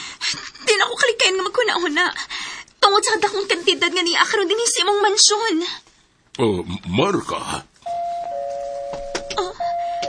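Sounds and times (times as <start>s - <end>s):
speech: 0.3s - 7.7s
electronic doorbell ringing: 7.9s - 10.0s.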